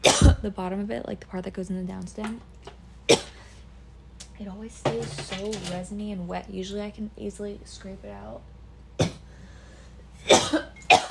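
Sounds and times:
person coughing: 0:00.0 - 0:00.4, 0:03.1 - 0:03.5, 0:09.0 - 0:09.3, 0:10.2 - 0:11.0
speech: 0:00.4 - 0:03.2, 0:04.4 - 0:09.2, 0:10.2 - 0:11.0.

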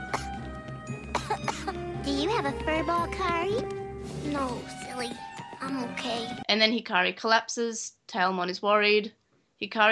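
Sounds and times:
girl coughing: 0:00.0 - 0:00.4, 0:01.0 - 0:01.8
speech: 0:02.4 - 0:09.9.

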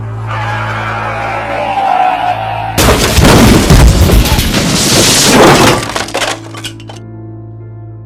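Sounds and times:
tire-and-brake screech: 0:00.0 - 0:02.8
heavy crash with smashing and scraping debris: 0:02.8 - 0:07.0.

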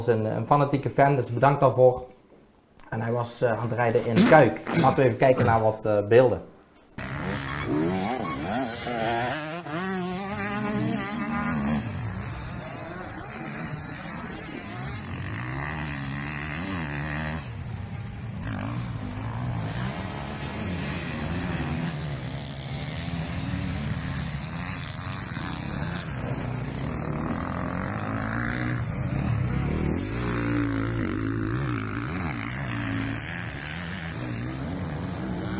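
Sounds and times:
speech: 0:00.0 - 0:02.2, 0:02.9 - 0:07.1
motocross bike engine revving and shifting gears on a track: 0:06.8 - 0:35.5.

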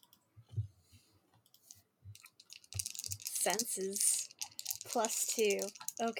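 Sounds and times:
metal dice rolled during a tabletop role-playing game: 0:02.2 - 0:06.1
speech: 0:03.4 - 0:04.2, 0:04.9 - 0:06.1.

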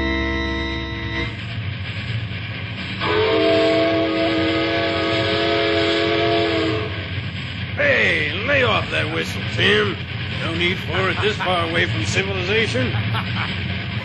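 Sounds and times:
long loud train whistle blaring: 0:00.0 - 0:01.4, 0:03.0 - 0:07.0
train rumbling on rails: 0:00.0 - 0:14.0
speech: 0:09.2 - 0:14.0
laughter: 0:10.4 - 0:14.0
wavering voice-like sound: 0:10.7 - 0:12.0.

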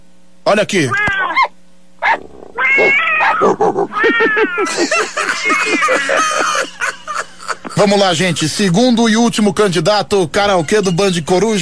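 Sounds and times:
speech: 0:00.5 - 0:01.1, 0:02.8 - 0:07.0, 0:07.8 - 0:11.6
cat meowing and caterwauling: 0:00.8 - 0:06.5
laughter: 0:03.5 - 0:08.0.

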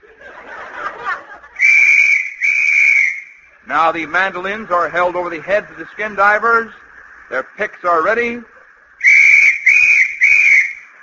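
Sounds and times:
laughter: 0:00.0 - 0:01.8, 0:03.5 - 0:09.0
whistle blown as a signal to skin divers: 0:01.6 - 0:03.6, 0:09.0 - 0:11.0
speech: 0:03.7 - 0:08.5.

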